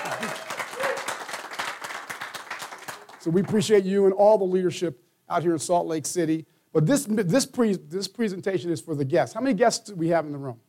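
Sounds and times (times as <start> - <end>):
audience applause at a business presentation in Salt Lake City: 0.0 - 3.6
speech: 3.2 - 10.6.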